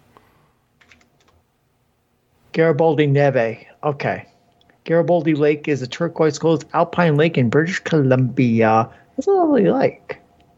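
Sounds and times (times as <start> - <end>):
soft typing on a computer keyboard: 0.8 - 1.4
speech: 2.6 - 10.2.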